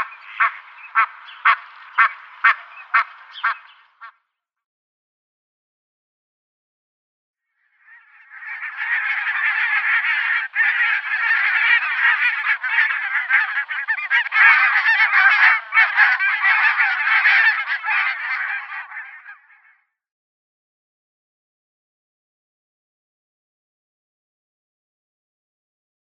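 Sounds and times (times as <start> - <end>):
barnacle goose yelping honks: 0.0 - 4.2, 7.9 - 19.6
dense clamour of barnacle geese calling: 0.0 - 4.2, 7.8 - 19.8.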